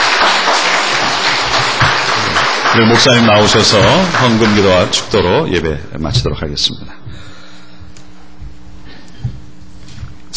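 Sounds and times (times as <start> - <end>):
church congregation applauding after a sermon: 0.0 - 5.6
speech: 2.8 - 7.3.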